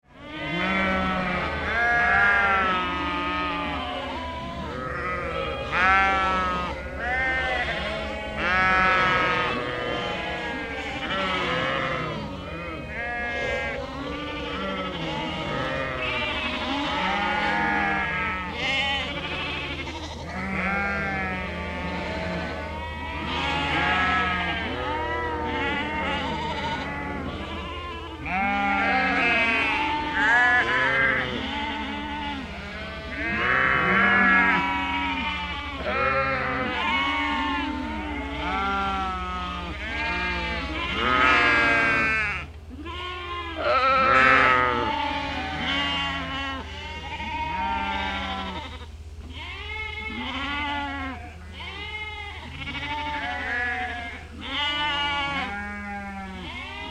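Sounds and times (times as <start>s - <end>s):
sheep and lambs bleating: 0.1s - 56.9s.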